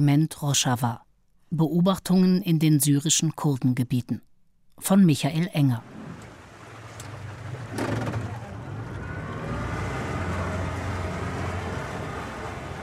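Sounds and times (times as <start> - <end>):
speech: 0.0 - 5.9
strong outboard motor pulling a boat backwards onto a river in northern Syria: 5.8 - 12.8.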